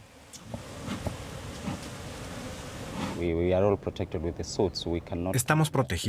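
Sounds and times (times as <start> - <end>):
honey bees buzzing around beekeepers' hives in a mangrove area: 0.0 - 3.3
speech: 3.2 - 6.0.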